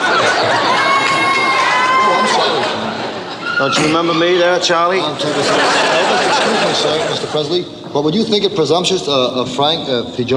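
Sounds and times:
dense crowd of women screaming shrilly at a male singer: 0.0 - 2.7
laughter: 0.0 - 7.7
speech: 3.6 - 10.3.

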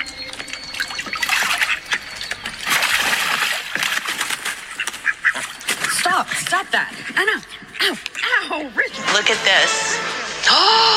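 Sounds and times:
small call duck flapping and paddling in a shallow pool: 0.0 - 8.4
speech: 6.6 - 8.0, 8.6 - 10.9.

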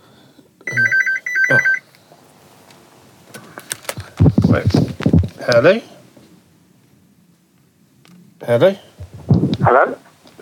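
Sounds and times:
home landline phone ringing with electronic warbling bursts: 0.7 - 1.8
speech: 1.5 - 1.7, 4.6 - 5.9, 8.5 - 8.9, 9.7 - 10.3
faint clicks and handling noises: 2.6 - 5.6.

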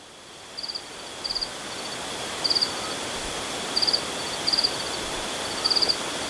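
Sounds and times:
steady hiss: 0.0 - 6.2
crickets trilling in rural Andalusia in Spain: 0.6 - 6.2.

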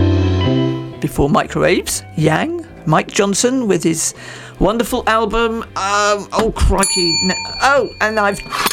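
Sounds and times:
speech: 1.0 - 8.7
small bell ringing: 6.8 - 8.7.

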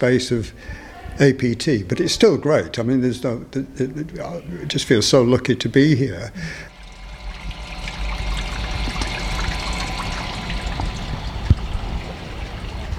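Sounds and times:
speech: 0.0 - 6.7
creek water trickling over stones: 6.7 - 12.9.

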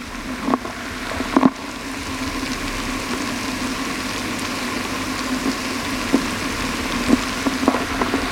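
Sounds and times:
denture cleaning tablet fizzing in a glass of water, hydrophone: 0.0 - 8.3
small clicks and pops of dissolving denture tablet: 0.4 - 1.6, 5.2 - 8.3.

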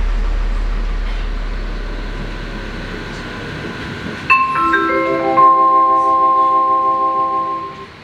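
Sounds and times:
tram rumbling heard from inside: 0.0 - 8.0
bright chime of stacked steady tones: 4.3 - 8.0.

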